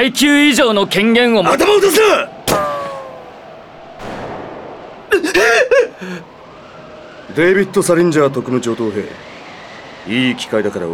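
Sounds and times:
speech: 0.0s - 2.7s, 5.4s - 6.3s, 7.3s - 9.4s, 10.0s - 10.9s
crackling railgun sniper shot with warbling electric whine: 2.4s - 7.1s
dull bullet impact: 2.5s - 3.0s, 4.0s - 5.2s.

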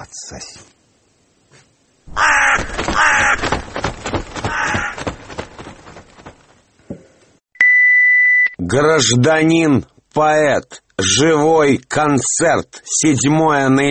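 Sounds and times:
speech: 0.0s - 0.8s, 8.7s - 13.8s
raven cawing with harsh raspy croaks: 2.1s - 6.5s.

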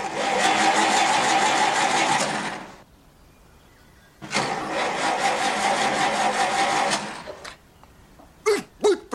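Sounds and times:
car engine starting, revving and driving off: 0.0s - 2.8s, 4.2s - 7.4s.

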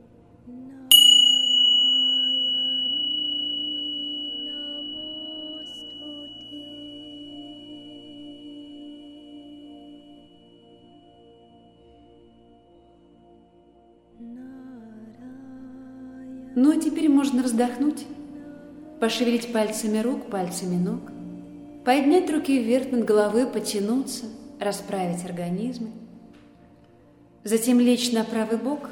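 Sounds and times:
small bell struck during a guided relaxation session: 0.9s - 9.0s
speech: 16.6s - 18.2s, 19.0s - 21.1s, 21.8s - 26.0s, 27.4s - 28.9s.

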